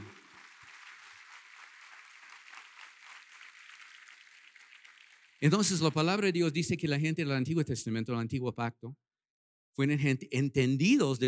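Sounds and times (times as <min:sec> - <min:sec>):
audience applause: 0:00.0 - 0:06.3
speech: 0:05.4 - 0:09.0, 0:09.8 - 0:11.2.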